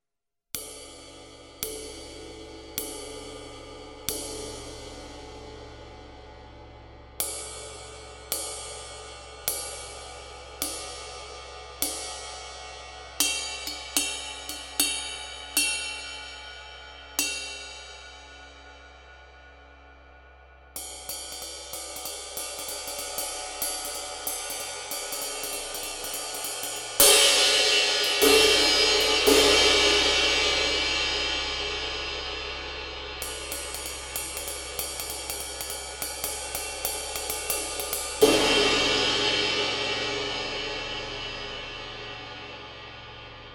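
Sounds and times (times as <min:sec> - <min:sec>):
Sabian Raw Bell Dry 21 ride cymbal: 0:00.6 - 0:20.0, 0:20.8 - 0:43.5.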